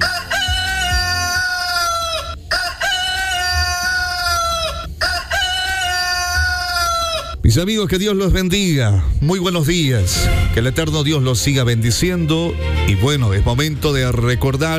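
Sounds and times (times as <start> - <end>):
rooster crowing: 0.0 - 7.4
speech: 7.5 - 14.7.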